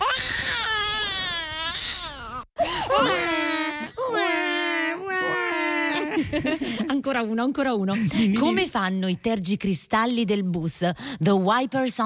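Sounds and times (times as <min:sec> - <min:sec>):
voice imitating babies crying on a bus: 0:00.0 - 0:06.1
speech: 0:06.2 - 0:12.0.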